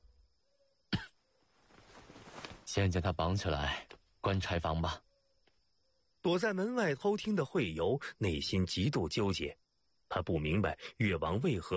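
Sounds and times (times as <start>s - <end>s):
man coughing: 0.9s - 1.2s
speech: 2.8s - 5.0s, 6.2s - 11.7s.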